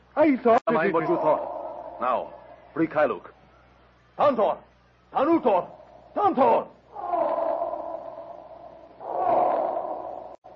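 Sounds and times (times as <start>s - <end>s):
speech: 0.2s - 3.3s, 4.2s - 7.2s
elephants trumpeting: 0.8s - 2.7s, 6.8s - 10.5s.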